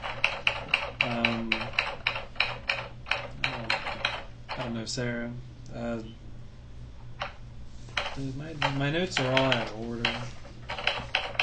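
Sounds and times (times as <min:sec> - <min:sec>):
typing on a computer keyboard: 0:00.0 - 0:04.7, 0:08.0 - 0:11.4
speech: 0:04.8 - 0:06.2, 0:08.2 - 0:10.4.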